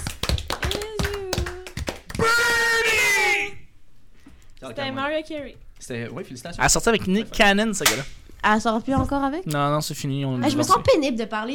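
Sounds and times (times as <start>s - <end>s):
sharp uneven hand clapping: 0.0s - 3.0s
speech: 4.6s - 11.5s.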